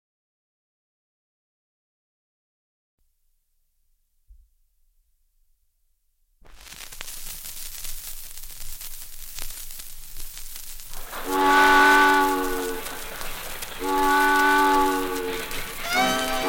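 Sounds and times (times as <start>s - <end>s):
steam train rumbling and clattering: 9.9s - 16.4s
chord-like steam train whistle blasts: 11.0s - 16.4s.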